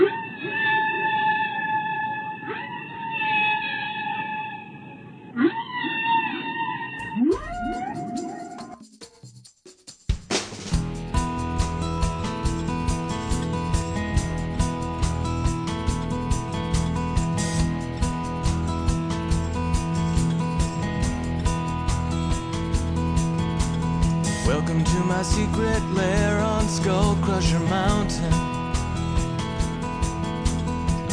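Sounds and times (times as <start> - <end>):
whale song with moaning calls and sweeping cries: 0.0 - 8.8
dense music: 10.5 - 31.1
speech: 25.2 - 28.5.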